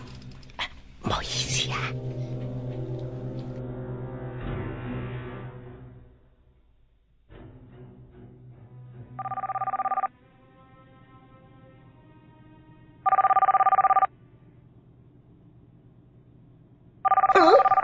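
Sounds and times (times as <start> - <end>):
speech: 1.6 - 2.2
mobile phone ringing in a cinema: 9.2 - 10.1, 13.1 - 14.1, 17.1 - 17.8.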